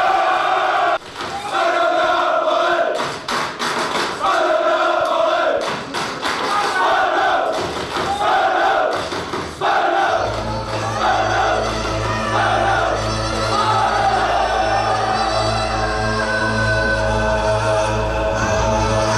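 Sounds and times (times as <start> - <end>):
large crowd of football fans roaring and shouting: 0.0 - 3.3, 3.9 - 19.0.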